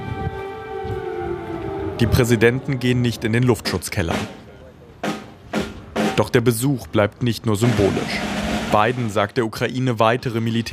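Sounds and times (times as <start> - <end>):
air raid siren wailing in Kyiv, Ukraine: 0.0 - 4.3
speech: 2.0 - 4.4, 6.2 - 10.7.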